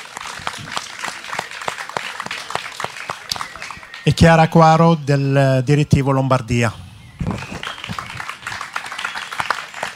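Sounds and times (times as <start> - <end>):
crowd at a panel event applauding: 0.0 - 4.9, 7.2 - 9.9
speech: 4.0 - 6.8.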